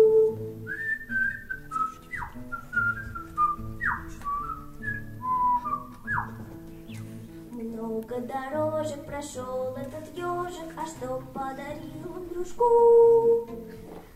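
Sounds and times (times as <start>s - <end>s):
clear bright whistled melody: 0.0s - 7.2s, 12.6s - 13.8s
steady low instrumental backing: 0.0s - 14.1s
speech: 9.2s - 11.8s, 12.4s - 13.6s.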